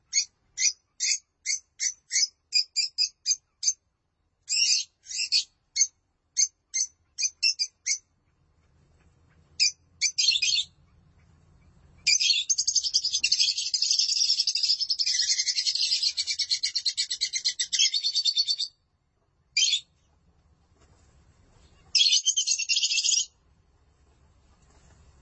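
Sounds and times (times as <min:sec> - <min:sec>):
lovebird song: 0:00.0 - 0:03.8, 0:04.5 - 0:08.1, 0:09.4 - 0:18.8, 0:19.6 - 0:19.9, 0:21.8 - 0:23.3
faint low hum: 0:02.4 - 0:25.2.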